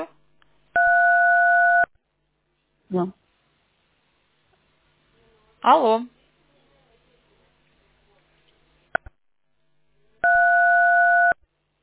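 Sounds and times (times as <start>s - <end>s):
telephone busy tone beeps: 0.8s - 1.9s, 10.2s - 11.4s
speech: 2.9s - 3.2s, 5.6s - 6.2s.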